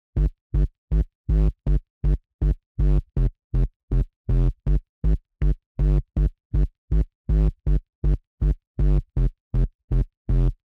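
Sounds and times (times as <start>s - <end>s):
bassline: 0.2s - 10.6s.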